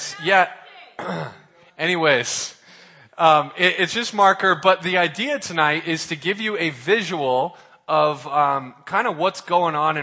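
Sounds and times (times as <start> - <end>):
speech: 0.2 - 2.6, 3.2 - 10.0
throat clearing: 1.0 - 1.5.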